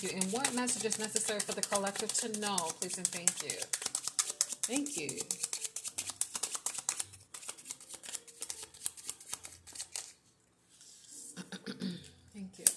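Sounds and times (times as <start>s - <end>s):
speech: 0.0s - 3.9s, 4.7s - 5.5s
cards shuffled for a card reading: 0.0s - 11.2s.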